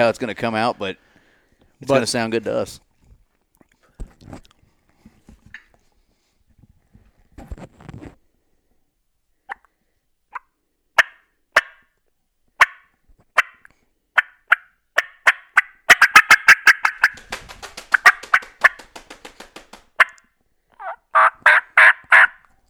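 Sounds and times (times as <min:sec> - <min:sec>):
speech: 0:00.0 - 0:01.1, 0:01.8 - 0:02.8, 0:04.3 - 0:04.5
turkey call imitating hen yelps: 0:12.6 - 0:12.8, 0:13.4 - 0:13.6, 0:14.2 - 0:20.2, 0:20.8 - 0:22.4.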